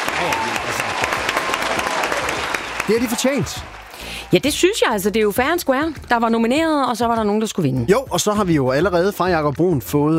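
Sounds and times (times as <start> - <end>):
applause sound effect played in a studio: 0.0 - 5.1
speech: 0.2 - 1.1, 2.9 - 10.1.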